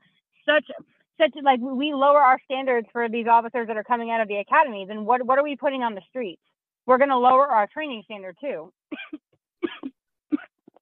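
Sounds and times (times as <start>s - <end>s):
speech: 0.5s - 10.0s
harsh coughing: 8.9s - 10.7s.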